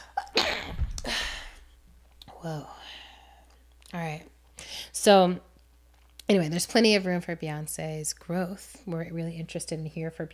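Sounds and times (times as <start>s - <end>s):
forceful sneeze: 0.4s - 0.8s
speech: 2.4s - 2.8s, 3.9s - 4.3s, 5.0s - 5.5s, 6.3s - 10.3s.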